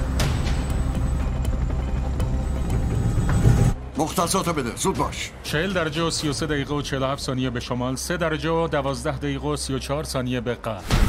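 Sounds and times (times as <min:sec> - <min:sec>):
helicopter landing with heavy rotor thumping and engine whine: 0:00.0 - 0:03.9
speech: 0:04.0 - 0:11.0.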